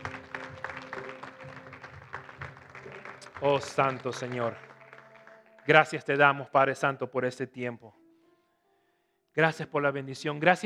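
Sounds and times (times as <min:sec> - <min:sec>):
church audience applauding: 0:00.0 - 0:06.5
speech: 0:03.4 - 0:04.7, 0:05.6 - 0:08.0, 0:09.4 - 0:10.6.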